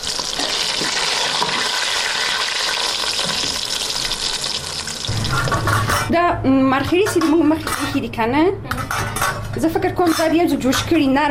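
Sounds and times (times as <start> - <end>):
mushrooms sizzling and bubbling in a pan: 0.0 - 5.4
speech: 6.1 - 8.7, 9.6 - 11.2.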